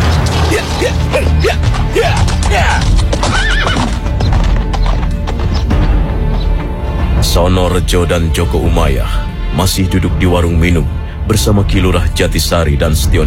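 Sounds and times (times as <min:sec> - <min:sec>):
hooves of a ridden horse clip-clopping: 0:00.2 - 0:06.7
horse whinny: 0:01.3 - 0:04.4
speech: 0:07.8 - 0:13.2.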